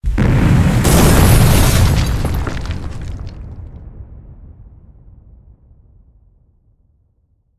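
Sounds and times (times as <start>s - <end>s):
stockpile explosion: 0.0s - 6.0s.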